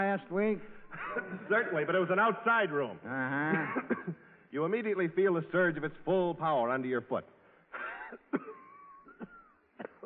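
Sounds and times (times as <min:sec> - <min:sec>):
speech: 0:00.0 - 0:08.6
laughter: 0:00.6 - 0:02.4, 0:03.1 - 0:04.3
person clearing throat: 0:03.3 - 0:04.3, 0:07.8 - 0:10.0
person coughing: 0:03.4 - 0:04.3, 0:07.8 - 0:10.0.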